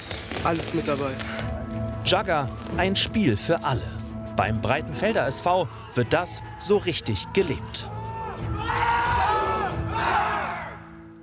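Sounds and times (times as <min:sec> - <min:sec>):
speech: 0:00.0 - 0:08.0
group of Jugger players roaring a battle cry: 0:08.0 - 0:10.8.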